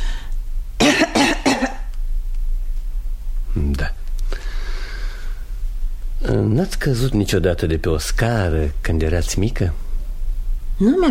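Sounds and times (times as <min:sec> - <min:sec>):
low steady hum: 0:00.0 - 0:11.0
patient coughing during a medical examination: 0:00.8 - 0:01.9
speech: 0:06.4 - 0:09.8, 0:10.8 - 0:11.0.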